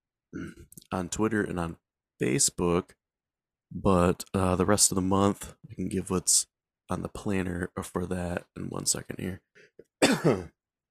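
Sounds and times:
speech: 0:00.3 - 0:03.0, 0:03.7 - 0:10.6
husky coughs from allergies: 0:10.0 - 0:10.5.

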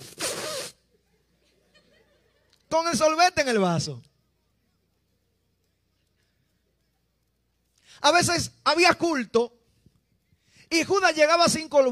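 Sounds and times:
voice imitating slurping drink through a straw: 0:00.0 - 0:00.8
laughter: 0:00.9 - 0:02.7
speech: 0:02.7 - 0:04.1, 0:08.0 - 0:09.6, 0:10.7 - 0:11.9.

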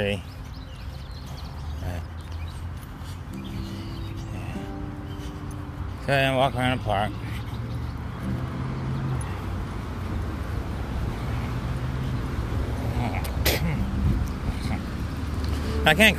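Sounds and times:
speech: 0:00.0 - 0:00.4, 0:06.1 - 0:07.3, 0:15.8 - 0:16.1
faint wind outdoors: 0:00.0 - 0:16.1
traffic: 0:00.0 - 0:16.1
Aramark truck rumbling along a road by a park: 0:03.3 - 0:16.1.

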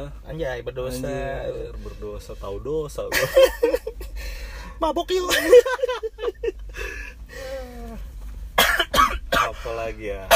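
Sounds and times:
speech: 0:00.0 - 0:07.0, 0:09.6 - 0:10.3
laughter: 0:03.1 - 0:04.1, 0:05.3 - 0:06.8
harsh throaty coughs inside a car: 0:08.6 - 0:10.3.

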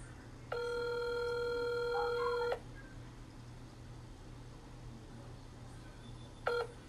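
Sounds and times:
phone line ringing with electronic tone on an unanswered call: 0:00.5 - 0:02.6, 0:06.5 - 0:06.7.

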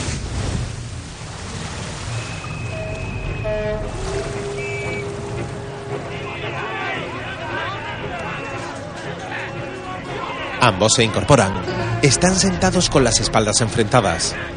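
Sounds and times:
churning water from a boat sinking in a harbour: 0:00.0 - 0:14.5
whistle- or horn-like tones: 0:02.1 - 0:08.7
speech: 0:10.6 - 0:14.5.

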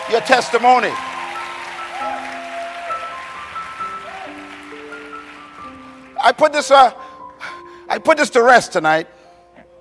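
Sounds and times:
audience clapping steadily: 0:00.0 - 0:06.7
speech: 0:00.1 - 0:01.1, 0:06.2 - 0:07.0, 0:07.9 - 0:09.2.

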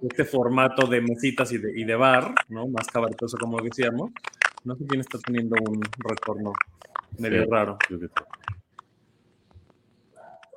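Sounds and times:
speech: 0:00.0 - 0:08.4
typing on a computer keyboard, writing an email: 0:02.1 - 0:08.9.

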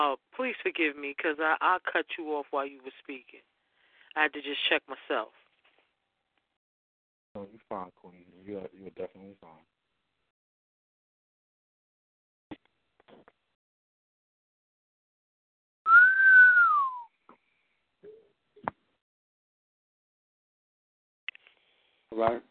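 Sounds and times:
speech: 0:00.0 - 0:03.5, 0:04.2 - 0:05.4, 0:07.4 - 0:09.8, 0:22.1 - 0:22.4
person whistling: 0:15.9 - 0:17.1.

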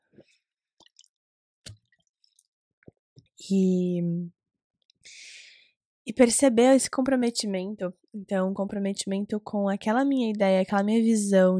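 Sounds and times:
person sipping water with slurps, gulps and swallowing clicks: 0:00.8 - 0:02.5
speech: 0:03.4 - 0:04.4, 0:06.1 - 0:11.5.

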